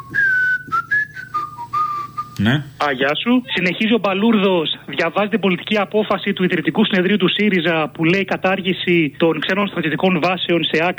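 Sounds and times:
person whistling a melody: 0.0s - 2.5s
speech: 2.4s - 10.9s.

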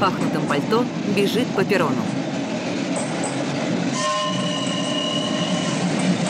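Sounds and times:
speech: 0.0s - 2.2s
train pulling away from a snow-covered station platform: 0.0s - 6.2s
sustained train horn tone: 3.9s - 6.0s.

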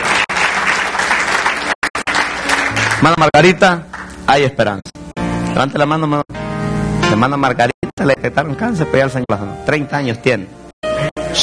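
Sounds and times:
congregation applauding loudly at a church service: 0.0s - 4.4s
speech: 3.0s - 5.0s, 5.6s - 6.4s, 7.1s - 11.4s.

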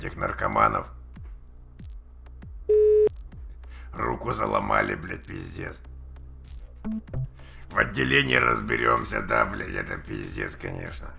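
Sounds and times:
speech: 0.0s - 1.0s, 4.0s - 5.9s, 6.8s - 11.1s
telephone busy tone while dialing a mobile number: 2.7s - 3.1s.

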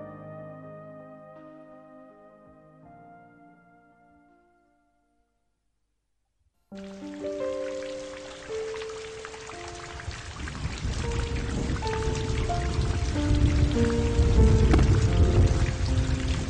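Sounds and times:
rain pattering and splashing on surfaces: 6.8s - 16.4s.

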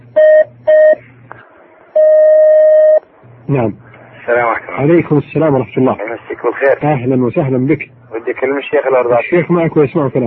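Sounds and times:
telephone beeps as a caller is put through: 0.2s - 1.0s, 2.0s - 3.0s
speech: 3.5s - 10.2s.

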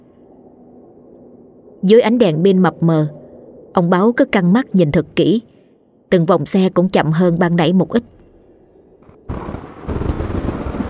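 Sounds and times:
speech: 1.8s - 3.2s, 3.8s - 5.5s, 6.1s - 8.2s
thunder crack after lightning on a night road: 9.0s - 10.8s.

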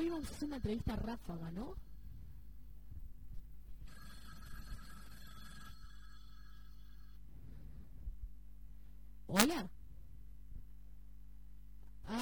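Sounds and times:
telephone ringing electronically: 0.0s - 1.5s, 3.8s - 7.3s
speech: 0.0s - 1.9s, 9.3s - 9.8s
low constant hum: 0.0s - 12.2s.

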